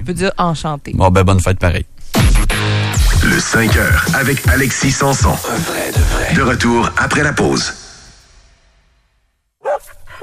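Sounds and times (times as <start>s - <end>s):
speech: 0.1s - 7.8s
dog barking: 9.6s - 10.2s.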